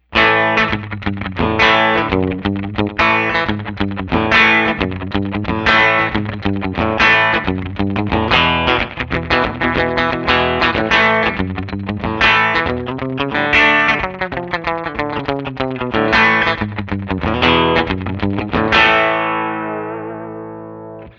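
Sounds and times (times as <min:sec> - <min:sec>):
Guild X160R Rockabilly guitar on bridge: 0:00.0 - 0:21.1.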